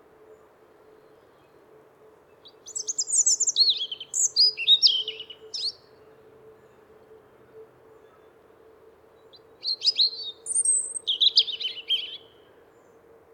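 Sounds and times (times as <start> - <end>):
European robin singing: 2.4 - 5.9, 9.6 - 12.4.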